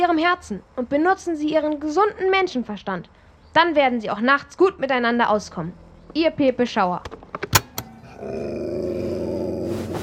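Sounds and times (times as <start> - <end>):
speech: 0.0 - 7.2, 8.2 - 8.7
dog growling: 8.0 - 10.0.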